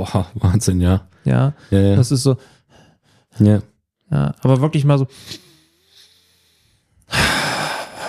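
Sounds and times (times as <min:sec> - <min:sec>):
speech: 0:00.0 - 0:02.6, 0:03.4 - 0:05.4
long deep belly breath drawn in: 0:02.4 - 0:03.4, 0:05.1 - 0:08.0.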